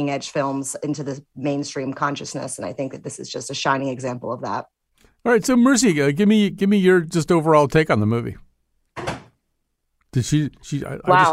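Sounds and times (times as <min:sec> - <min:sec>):
speech: 0:00.0 - 0:08.4, 0:10.1 - 0:11.3
door slamming shut: 0:09.0 - 0:09.4.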